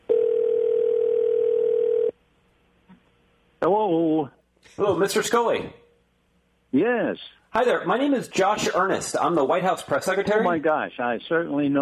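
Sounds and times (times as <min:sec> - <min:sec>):
electronic telephone ring tone over a recorded phone line: 0:00.1 - 0:02.2
speech: 0:03.6 - 0:05.8, 0:06.7 - 0:11.8.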